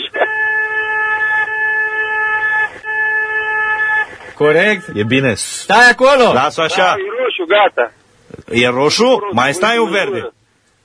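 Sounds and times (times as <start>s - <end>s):
car horn honking: 0.0s - 5.3s
speech: 4.4s - 10.4s.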